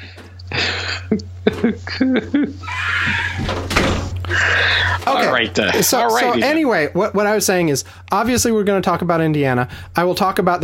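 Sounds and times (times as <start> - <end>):
steady low electrical hum: 0.0 - 10.6
laughter: 0.5 - 3.5
speech: 1.0 - 3.7, 4.4 - 10.6
door swinging shut with a solid thunk: 3.0 - 4.2.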